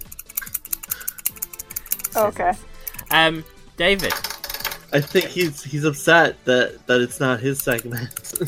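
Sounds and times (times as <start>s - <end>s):
push pen clicking: 0.0s - 2.2s, 7.6s - 8.4s
speech: 2.2s - 4.3s, 4.9s - 8.4s.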